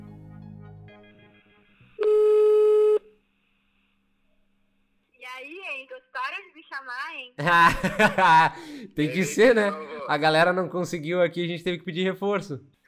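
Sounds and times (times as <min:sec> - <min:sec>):
telephone tone while placing a call: 0:01.4 - 0:03.1
speech: 0:05.8 - 0:12.7
laughter: 0:07.4 - 0:10.3.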